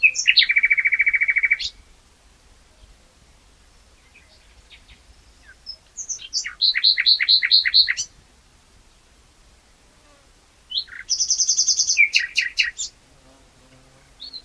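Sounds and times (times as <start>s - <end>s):
common nightingale Luscinia megarhynchos singing: 0.0s - 1.9s, 3.9s - 8.2s, 10.7s - 13.0s, 14.1s - 14.4s.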